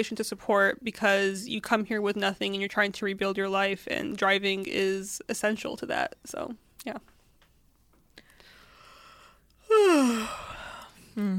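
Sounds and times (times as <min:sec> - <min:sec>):
speech: 0:00.0 - 0:07.1, 0:11.2 - 0:11.3
person yawning: 0:09.6 - 0:11.3.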